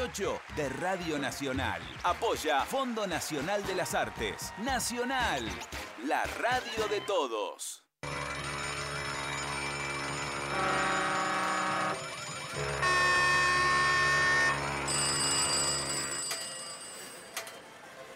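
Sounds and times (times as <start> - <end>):
speech: 0.1 - 7.8
alarm bells ringing: 8.0 - 17.8.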